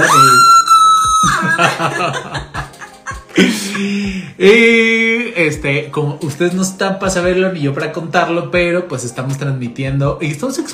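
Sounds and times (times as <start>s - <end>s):
loud high-pitched celebratory shout: 0.0s - 1.5s
laughter: 1.2s - 4.0s
speech: 2.0s - 2.4s, 3.4s - 10.7s.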